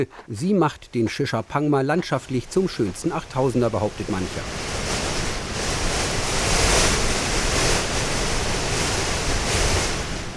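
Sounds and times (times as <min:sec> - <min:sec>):
speech: 0:00.0 - 0:04.8
strong mountain wind in storm gusts: 0:02.3 - 0:10.3.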